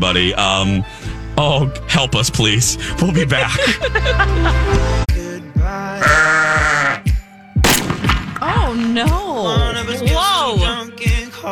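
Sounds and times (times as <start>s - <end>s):
speech: 0.0s - 5.1s, 8.8s - 10.6s
low thumping beats: 0.0s - 11.3s
laughter: 2.8s - 5.0s
sheep bleating: 5.9s - 7.1s.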